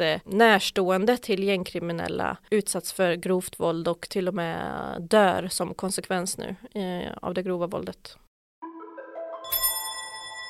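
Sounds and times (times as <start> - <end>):
speech: 0.0 - 8.3
doorbell ringing at the front door of a residential house in Tullinge, south Stockholm: 8.6 - 10.4.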